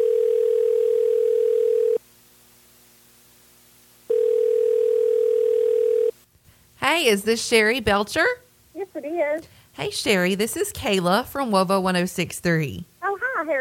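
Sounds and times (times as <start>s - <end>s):
telephone tone on an outgoing call: 0.0s - 2.0s, 4.1s - 6.2s
speech: 7.0s - 8.4s, 9.0s - 12.9s.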